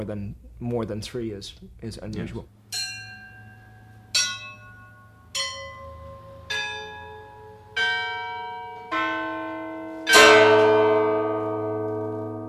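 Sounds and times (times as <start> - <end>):
speech: 0.0 - 2.8
large set of Orthodox church bells ringing: 2.7 - 12.4.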